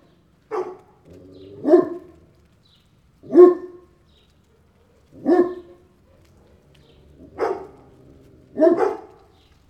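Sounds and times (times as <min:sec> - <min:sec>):
big dogs barking: 0:00.4 - 0:02.5, 0:03.2 - 0:09.5.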